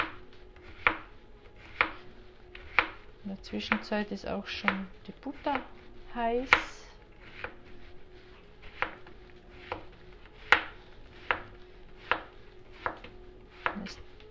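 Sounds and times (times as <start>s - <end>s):
knife slicing food into thin pieces on a cutting board: 0.0s - 2.0s, 2.6s - 3.0s, 6.5s - 7.6s, 8.6s - 14.1s
faint hum: 0.0s - 14.2s
speech: 3.3s - 6.8s.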